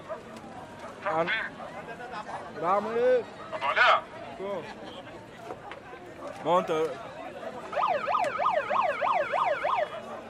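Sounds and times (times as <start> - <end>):
faint murmur: 0.0 - 10.2
speech: 1.0 - 5.0, 6.3 - 7.1
small megaphone on a bus giving a rapid warbling siren: 7.7 - 10.1.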